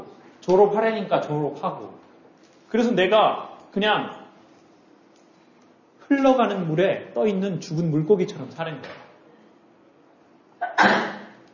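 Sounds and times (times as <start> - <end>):
speech: 0.5 - 2.0, 2.7 - 4.2, 6.1 - 9.0
person sneezing: 10.6 - 11.4.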